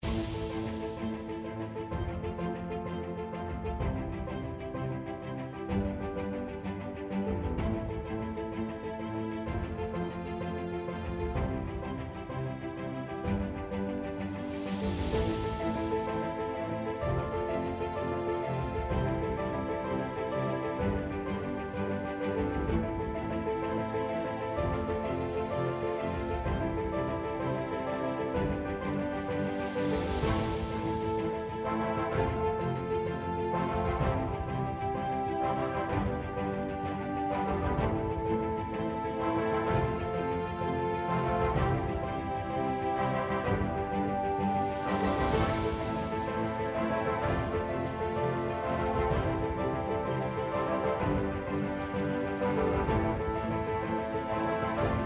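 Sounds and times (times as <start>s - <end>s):
slot game background music: 0.0s - 55.0s.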